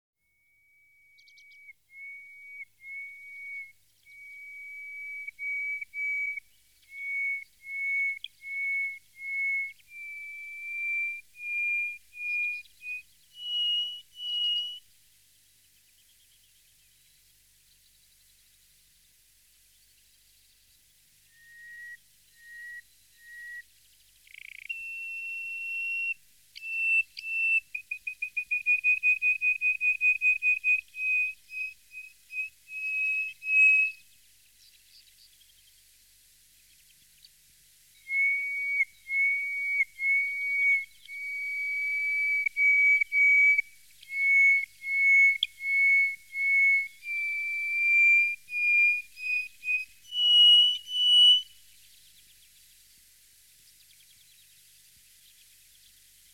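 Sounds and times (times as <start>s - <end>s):
greater hoopoe-lark singing in the desert: 0.6s - 14.9s, 19.8s - 35.8s, 38.0s - 52.5s.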